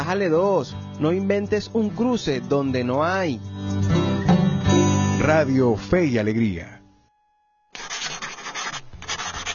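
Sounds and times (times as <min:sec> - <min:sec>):
speech: 0:00.1 - 0:04.0, 0:05.3 - 0:06.8
pen or pencil scratching on paper while writing: 0:07.8 - 0:09.5.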